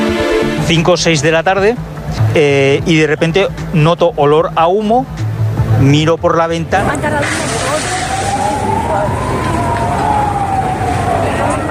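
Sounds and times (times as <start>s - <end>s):
loud dense rumble of street noise: 0.0s - 11.7s
speech: 0.7s - 5.2s, 5.8s - 7.5s
indistinct voices: 6.8s - 11.7s
emergency vehicle siren wailing at a fire scene: 7.4s - 11.7s.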